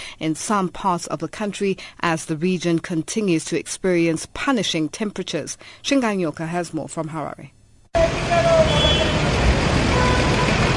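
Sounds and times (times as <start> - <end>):
speech: 0.2 - 8.9
busy street traffic rumbling at an intersection in Harare Zimbabwe: 8.0 - 10.7
engines droning: 8.0 - 10.7
brief horn-like tone: 8.4 - 10.7.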